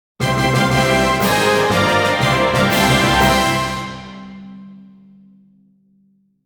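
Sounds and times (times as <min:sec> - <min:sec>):
short victory fanfare: 0:00.2 - 0:04.6.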